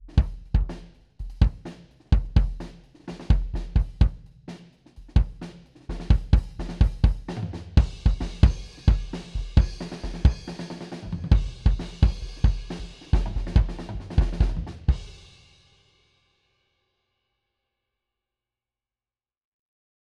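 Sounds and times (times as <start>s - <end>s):
kick drum with blanket: 0.0s - 4.3s, 5.1s - 10.5s, 11.3s - 15.1s.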